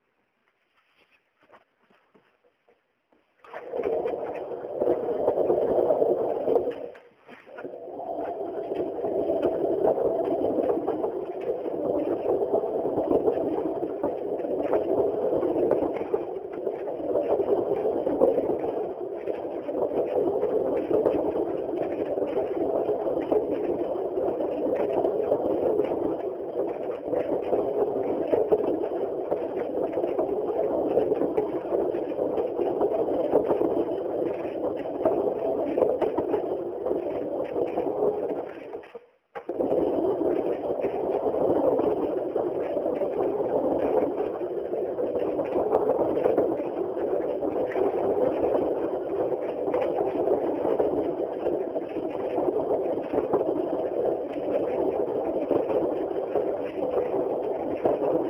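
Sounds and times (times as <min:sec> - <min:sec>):
mill: 0:03.4 - 0:58.2.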